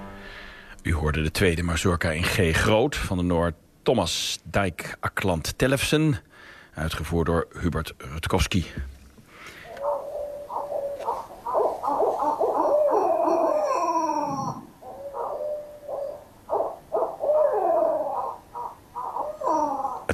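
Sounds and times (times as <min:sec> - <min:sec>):
speech: 0:00.9 - 0:08.9
barred owl hooting and cackling: 0:09.5 - 0:20.1.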